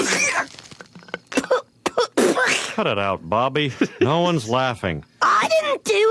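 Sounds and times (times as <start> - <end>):
person spitting something out: 0.0 - 1.2, 1.9 - 2.8
person coughing, sputtering and choking: 0.0 - 2.8
speech: 2.8 - 5.1.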